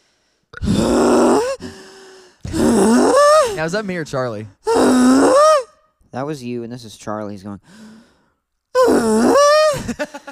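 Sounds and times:
person performing heavy breathing: 0.0s - 3.7s, 7.6s - 8.5s
speech: 3.6s - 5.5s, 6.1s - 7.9s, 8.9s - 10.3s.

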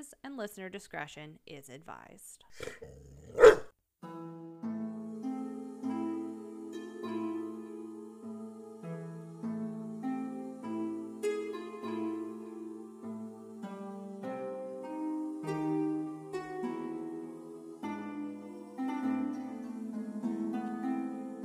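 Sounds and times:
speech: 0.0s - 3.6s
dog barking: 3.3s - 3.7s
instrumental tune with sustained tonal notes: 4.0s - 21.4s.

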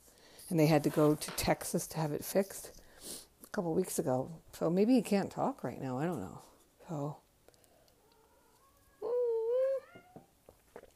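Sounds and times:
speech: 0.5s - 2.8s, 3.6s - 7.2s
cat meowing: 8.1s - 10.3s.

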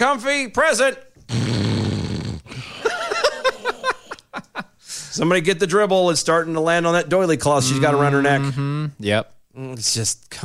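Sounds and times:
speech: 0.0s - 1.4s, 5.2s - 10.4s
voice imitating a sleeping woman snoring: 1.3s - 2.6s, 7.6s - 9.0s
laughter: 2.5s - 4.7s.

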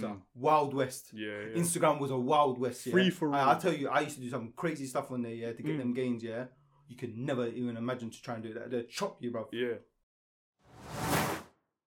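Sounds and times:
speech: 0.0s - 9.9s
broadband whoosh transition effect: 10.8s - 11.5s.

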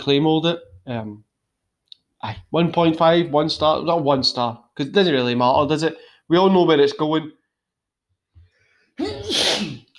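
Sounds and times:
speech: 0.0s - 1.3s, 2.2s - 7.4s
loud sneeze: 9.0s - 9.9s.

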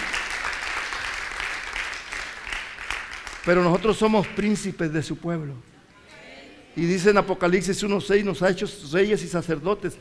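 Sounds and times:
congregation applauding: 0.0s - 4.4s
speech: 3.4s - 5.7s, 6.8s - 9.9s.

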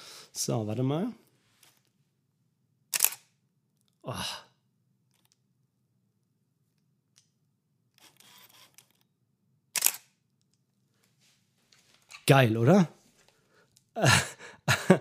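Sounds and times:
speech: 0.4s - 1.2s, 4.1s - 4.4s, 12.3s - 13.0s, 14.0s - 14.9s
DSLR camera mirror slap and shutter click: 2.9s - 3.3s, 9.8s - 10.1s
laughter: 14.0s - 14.9s.

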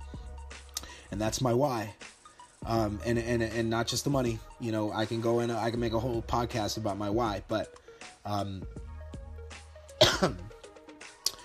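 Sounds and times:
speech: 1.1s - 2.0s, 2.6s - 8.8s, 10.2s - 10.5s
tired man coughing with a failing voice: 9.9s - 10.7s.

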